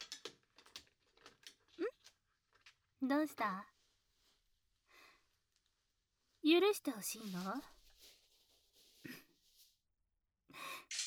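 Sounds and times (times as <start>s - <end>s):
small objects rattling as they are rummaged through for scissors: 0.0s - 3.0s
speech: 3.0s - 3.7s, 6.4s - 7.8s.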